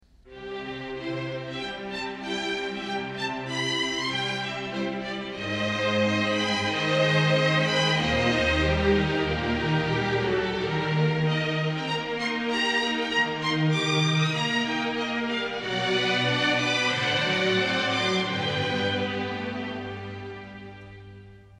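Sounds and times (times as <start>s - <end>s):
string instruments: 0.0s - 21.5s.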